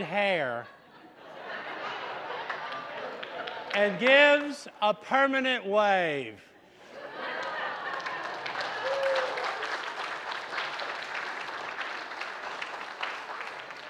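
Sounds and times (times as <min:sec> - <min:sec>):
speech: 0:00.0 - 0:00.8, 0:03.7 - 0:06.5
laughter: 0:00.0 - 0:04.5, 0:06.8 - 0:09.3
audience clapping after a joke: 0:02.3 - 0:04.6, 0:07.3 - 0:13.8.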